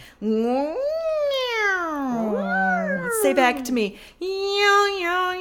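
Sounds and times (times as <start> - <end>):
speech: 0.2 - 0.9, 3.2 - 5.3
voice making drawn-out wavering wow noises: 0.8 - 3.7.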